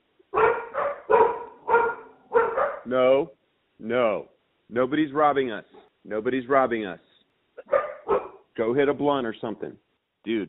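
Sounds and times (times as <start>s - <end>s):
dogs barking wildly: 0.3s - 2.9s, 7.6s - 8.5s
speech: 2.9s - 7.1s, 8.6s - 10.4s.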